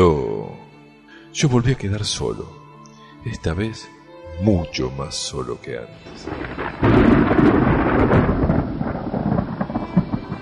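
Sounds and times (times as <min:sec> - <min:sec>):
speech: 0:00.0 - 0:00.3, 0:01.3 - 0:02.6, 0:03.2 - 0:08.3
heavy rain: 0:06.1 - 0:10.4.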